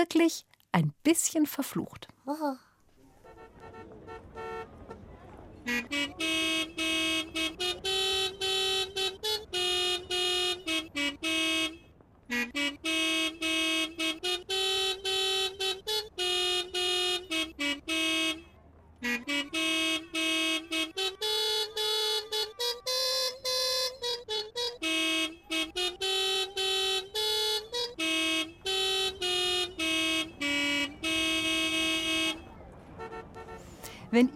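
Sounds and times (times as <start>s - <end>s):
speech: 0.0s - 2.7s, 5.6s - 7.9s
car horns honking a tune: 3.2s - 34.3s
murmur of talk: 4.6s - 6.3s, 32.2s - 34.3s.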